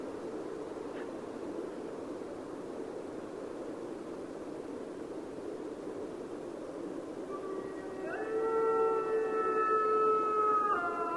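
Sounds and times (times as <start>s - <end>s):
soft background hiss: 0.0s - 11.1s
Mexican wolf howl: 7.3s - 11.1s.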